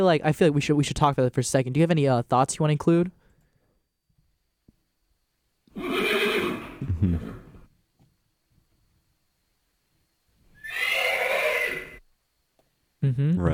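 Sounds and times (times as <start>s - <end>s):
speech: 0.0s - 3.2s, 6.9s - 7.4s, 13.0s - 13.5s
horse neighing: 5.7s - 7.6s, 10.6s - 12.0s.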